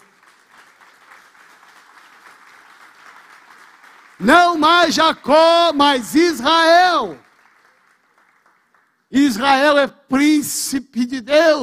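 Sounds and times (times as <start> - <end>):
large crowd applauding: 0.0 - 9.1
speech: 4.2 - 7.2, 9.1 - 11.6.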